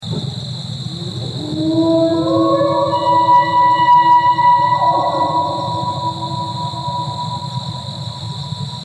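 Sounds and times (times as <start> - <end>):
elk call: 0.8 - 8.4.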